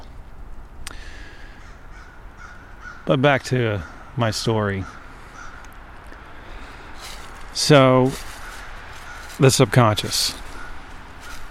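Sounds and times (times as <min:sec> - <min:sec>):
low steady rumble of outdoor noise: 0:00.0 - 0:11.4
crow cawing: 0:01.0 - 0:03.1, 0:03.8 - 0:04.2, 0:04.8 - 0:07.5, 0:08.1 - 0:11.4
speech: 0:03.1 - 0:05.0, 0:07.6 - 0:08.3, 0:09.4 - 0:10.4.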